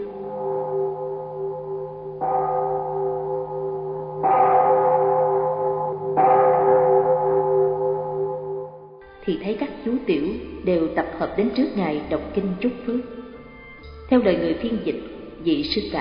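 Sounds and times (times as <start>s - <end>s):
deep bell ringing at a Buddhist temple at the foot of a mountain: 0.0s - 9.0s
speech: 9.3s - 13.2s, 14.1s - 15.9s.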